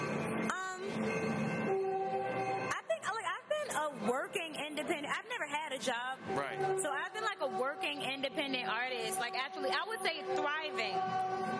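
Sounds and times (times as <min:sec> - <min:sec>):
train horn blaring in long sustained chords: 0:00.0 - 0:02.8, 0:06.0 - 0:11.5
rail noise: 0:00.0 - 0:11.5
speech: 0:04.0 - 0:11.5.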